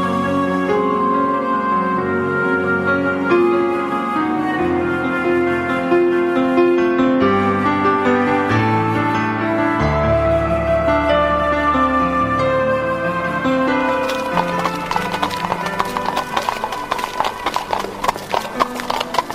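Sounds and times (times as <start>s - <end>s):
music: 0.0s - 19.3s
horse-drawn carriage hooves clip-clopping: 13.9s - 19.3s.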